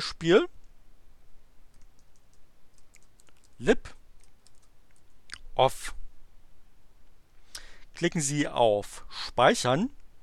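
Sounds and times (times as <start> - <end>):
speech: 0.0 - 0.6, 3.6 - 4.0, 5.6 - 6.0, 8.0 - 10.0
faint typing on a computer keyboard entering a macro name: 1.7 - 3.6, 4.2 - 4.7.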